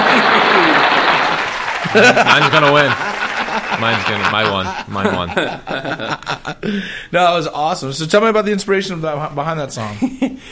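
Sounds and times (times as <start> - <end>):
studio audience applause: 0.0 - 5.2
laughter: 0.0 - 6.8
speech: 2.0 - 3.0, 3.7 - 10.4.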